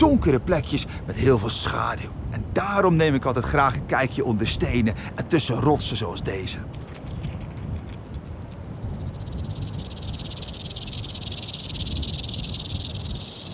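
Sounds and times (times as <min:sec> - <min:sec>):
speech: 0:00.0 - 0:06.9
low rumbling background: 0:00.0 - 0:09.9
rattlesnake rattling its tail as a warning in the Sonoran Desert: 0:00.0 - 0:13.5.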